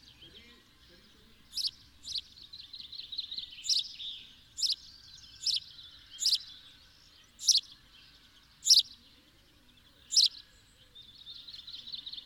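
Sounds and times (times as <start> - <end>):
house sparrow Passer domesticus chirping: 0.0 - 9.0, 9.8 - 10.6, 11.2 - 12.2
low background noise: 0.0 - 12.2
continuous high chatter: 1.2 - 4.8, 5.4 - 6.5.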